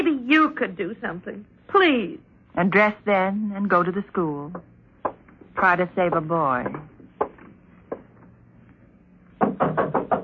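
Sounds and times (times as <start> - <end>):
speech: 0.3 - 4.7, 5.6 - 6.9
knocking on a door: 6.0 - 8.1, 9.4 - 10.2.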